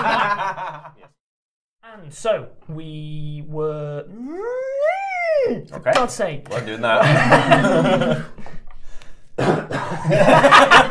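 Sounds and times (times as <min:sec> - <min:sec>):
laughter: 0:00.0 - 0:01.1, 0:06.6 - 0:08.6, 0:09.9 - 0:10.8
speech: 0:02.0 - 0:08.6, 0:09.4 - 0:10.8
person coughing harshly: 0:09.4 - 0:10.1.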